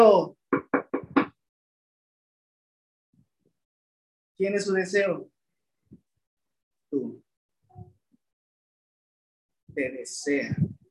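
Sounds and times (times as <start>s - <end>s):
speech: 0.0s - 0.4s, 4.4s - 5.3s, 6.9s - 7.2s, 9.8s - 10.8s
sharp knocks on a door: 0.5s - 1.3s.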